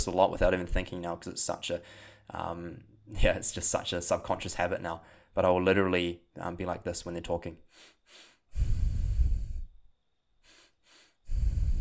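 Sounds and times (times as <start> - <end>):
speech: 0.0 - 8.8
breathing in and out through the nose: 1.8 - 2.3, 7.7 - 9.8, 10.4 - 11.7.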